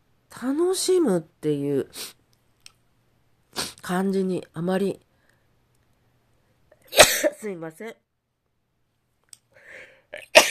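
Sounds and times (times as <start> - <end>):
speech: 0.4 - 2.2, 3.9 - 5.0, 7.4 - 8.0
single loud sneeze after breathy inhales: 6.9 - 7.4, 10.2 - 10.4
breathy inhales before a sneeze: 9.5 - 10.1.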